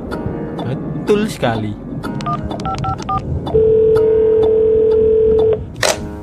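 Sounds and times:
speech: 0:01.1 - 0:02.1
DTMF keypad beeps of a phone number being dialed: 0:02.2 - 0:05.6
long steady electronic tone: 0:02.3 - 0:05.6.

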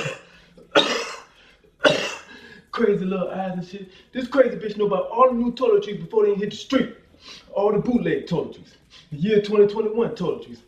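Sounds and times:
voice imitating a little girl fake-coughing: 0:00.0 - 0:02.4
speech: 0:02.8 - 0:10.6.

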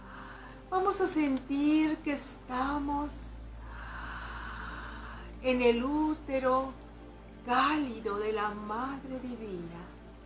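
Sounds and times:
deep inhalation during guided breathing: 0:00.0 - 0:00.7, 0:03.6 - 0:05.4
speech: 0:00.7 - 0:03.4, 0:05.4 - 0:06.8, 0:07.4 - 0:09.9.

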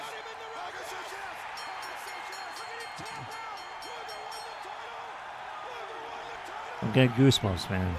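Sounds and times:
huge arena crowd roaring and cheering wildly: 0:00.0 - 0:07.9
scattered shouts from arena crowd: 0:00.0 - 0:07.9
speech: 0:06.8 - 0:07.9.

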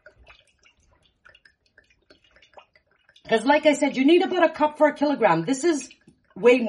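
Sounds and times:
olive oil glugging and trickling into a pot: 0:00.0 - 0:03.4, 0:05.7 - 0:06.6
speech: 0:03.3 - 0:06.6.

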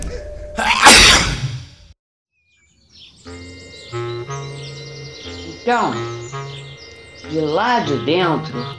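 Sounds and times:
performer sneezing forcefully: 0:00.6 - 0:01.6
speech: 0:05.7 - 0:06.1, 0:07.3 - 0:08.7.

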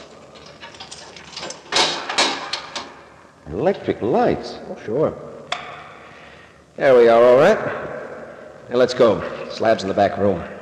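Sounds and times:
key rattling and clicking in a Yale lock: 0:00.0 - 0:03.0
speech: 0:03.5 - 0:05.3, 0:06.8 - 0:07.9, 0:08.7 - 0:10.5.

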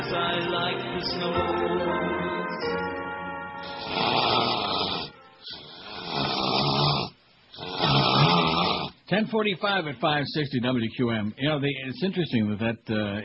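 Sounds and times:
speech: 0:00.1 - 0:02.3, 0:09.1 - 0:13.2
person snoring loudly: 0:03.6 - 0:09.0.

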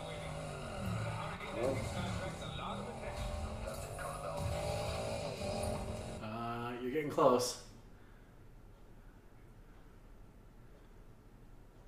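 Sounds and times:
video game car engine roaring driving toward a ramp: 0:00.0 - 0:06.2
speech: 0:01.6 - 0:02.4, 0:07.0 - 0:07.6.

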